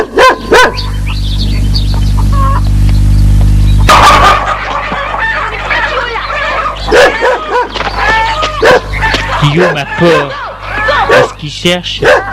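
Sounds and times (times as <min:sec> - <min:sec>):
farmyard dog barking: 0:00.0 - 0:01.0, 0:06.9 - 0:07.8, 0:08.6 - 0:11.4, 0:12.0 - 0:12.3
farmyard chickens clucking: 0:00.5 - 0:12.3
farmyard rooster crowing: 0:03.9 - 0:11.4
speech: 0:09.6 - 0:10.4, 0:11.1 - 0:12.2.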